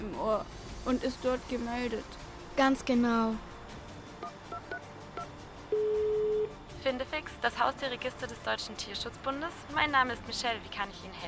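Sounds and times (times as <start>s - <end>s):
speech: 0.2s - 3.5s, 6.8s - 11.2s
electronic touch-tone beeps of a telephone keypad: 4.2s - 6.5s
sustained steady telephone tone: 5.7s - 6.5s.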